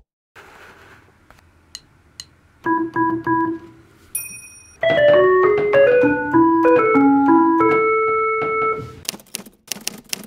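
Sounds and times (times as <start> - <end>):
ringtone melody on retro synthesizer: 2.7 - 3.6, 4.8 - 9.0
piano: 4.8 - 9.0.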